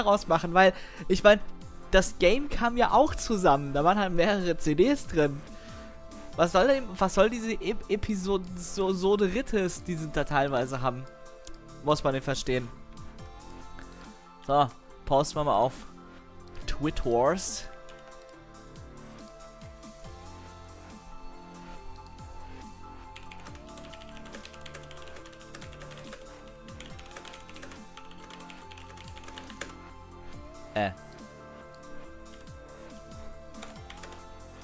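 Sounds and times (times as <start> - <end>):
speech: 0.0 - 5.5, 6.4 - 11.2, 11.8 - 12.8, 14.5 - 15.9, 16.8 - 17.7, 30.8 - 31.0
typing on a computer keyboard with an English layout: 21.6 - 30.0, 31.2 - 34.6.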